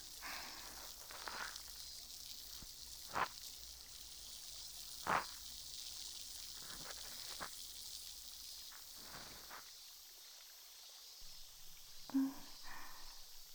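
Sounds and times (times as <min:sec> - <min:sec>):
crackles and pops of fizzing liquid on a cotton swab: 0:00.0 - 0:10.1
liquid fizzing on the tip of a cotton swab: 0:00.0 - 0:10.2.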